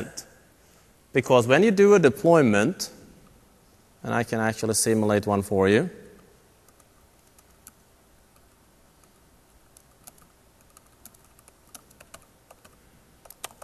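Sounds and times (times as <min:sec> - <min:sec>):
speech: 0:01.2 - 0:03.0, 0:04.0 - 0:06.0
computer keyboard typing: 0:06.7 - 0:07.8, 0:09.8 - 0:13.6.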